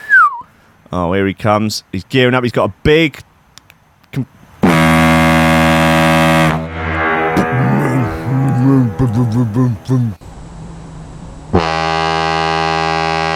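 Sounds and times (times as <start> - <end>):
person talking excitedly: 0.9 - 3.2, 7.4 - 10.2
speech: 0.9 - 3.3, 4.1 - 4.4, 9.0 - 10.3
large foghorn blasts being tested in a garden: 4.6 - 10.0, 11.5 - 13.3.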